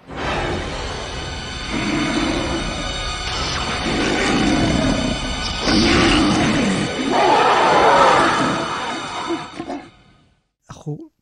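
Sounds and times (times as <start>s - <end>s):
monstrous wolf creature in a film roaring and growling: 1.5s - 10.0s.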